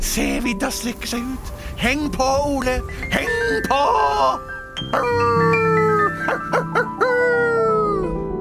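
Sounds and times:
speech: 0:00.1 - 0:05.8
husky dogs howling: 0:04.9 - 0:08.3.

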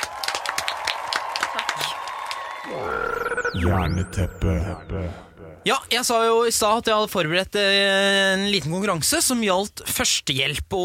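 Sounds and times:
small group applauding: 0:00.0 - 0:02.8
speech: 0:02.7 - 0:10.8.

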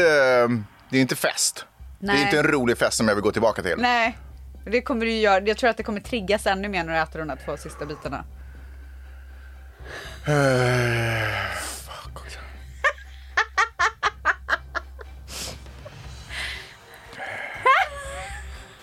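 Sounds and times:
speech: 0:00.0 - 0:08.4, 0:09.9 - 0:11.6
heavy breathing: 0:07.2 - 0:13.3, 0:15.2 - 0:18.8
person grunting: 0:10.3 - 0:11.6.

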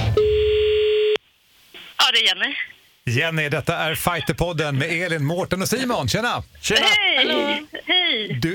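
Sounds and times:
bright busy electronic phone call tones: 0:00.1 - 0:01.2
speech: 0:02.3 - 0:08.5.

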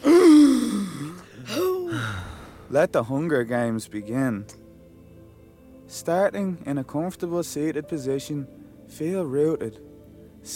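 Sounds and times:
loud deep breath during a guided meditation: 0:00.0 - 0:02.7
speech: 0:02.7 - 0:04.6, 0:05.9 - 0:10.5.

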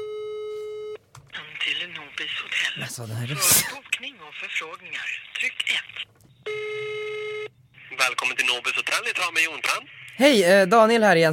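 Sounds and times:
speech: 0:02.2 - 0:06.1, 0:08.0 - 0:11.3
telephone tone on an outgoing call: 0:06.3 - 0:07.5.

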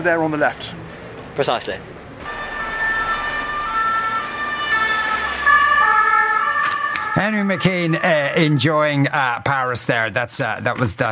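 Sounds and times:
speech: 0:00.0 - 0:00.8, 0:01.4 - 0:02.0, 0:07.2 - 0:11.1
street traffic rumble: 0:00.0 - 0:10.0
ambulance siren passing on Paris street: 0:02.2 - 0:09.1.

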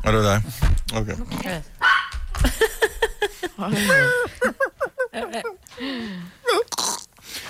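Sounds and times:
speech: 0:00.0 - 0:01.8, 0:03.5 - 0:07.0
dog barking in short sharp yips and a whining yelp: 0:01.8 - 0:02.2
laughter: 0:02.4 - 0:05.6.

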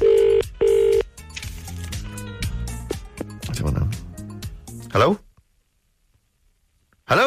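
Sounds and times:
phone line ringing with a double burst of electronic tone: 0:00.0 - 0:01.0
speech: 0:05.0 - 0:05.3, 0:07.1 - 0:07.2.

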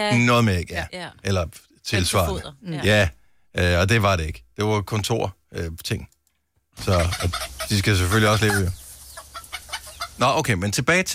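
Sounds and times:
speech: 0:00.0 - 0:06.1, 0:06.8 - 0:08.8, 0:10.2 - 0:11.1
hens clucking: 0:06.8 - 0:10.3.

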